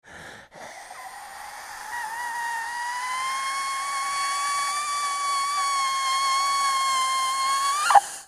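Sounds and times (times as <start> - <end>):
asthmatic wheezing lungs breathing: 0.0 - 8.2.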